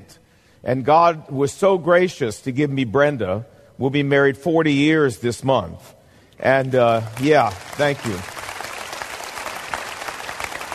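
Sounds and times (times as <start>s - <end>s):
speech: 0.1s - 8.4s
audience clapping after a talk: 6.5s - 10.7s.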